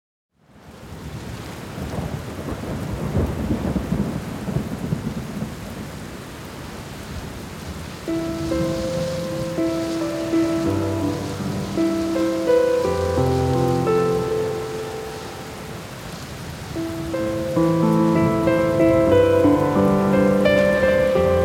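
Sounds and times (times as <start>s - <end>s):
rain noise: 0.3s - 21.4s
piano: 7.9s - 21.4s.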